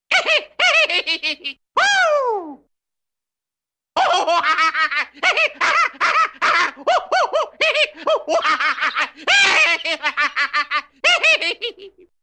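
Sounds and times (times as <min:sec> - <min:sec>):
man laughing crazily: 0:00.1 - 0:01.6, 0:04.0 - 0:12.1.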